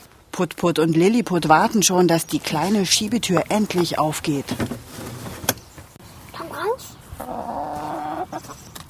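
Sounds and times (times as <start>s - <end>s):
speech: 0.4s - 4.9s
rustling farmyard background: 1.4s - 8.8s
chickens clucking: 6.5s - 8.8s.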